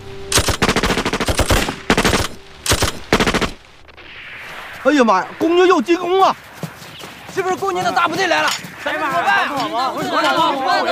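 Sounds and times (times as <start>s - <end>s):
automatic gunfire on a command to fire: 0.3s - 3.6s
speech: 4.8s - 6.5s, 7.4s - 10.9s.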